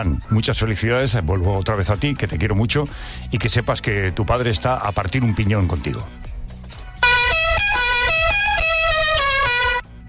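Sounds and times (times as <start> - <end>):
speech: 0.0 - 6.2
chorus of car horns honking in a traffic jam: 7.0 - 9.9.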